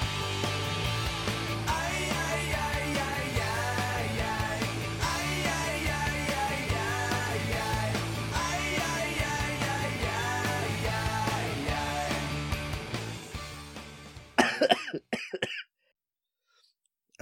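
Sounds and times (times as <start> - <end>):
music: 0.0 - 14.6
harsh coughs: 14.4 - 15.7.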